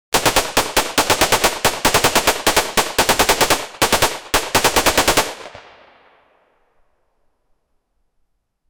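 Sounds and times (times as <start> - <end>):
loud realistic shotgun firing: 0.1 - 6.2.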